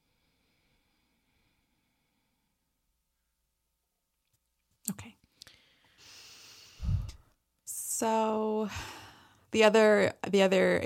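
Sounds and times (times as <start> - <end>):
slow breathing during a meditation: 0.0 - 2.8, 5.3 - 7.4, 8.7 - 9.5
speech: 8.0 - 8.9, 9.5 - 10.8.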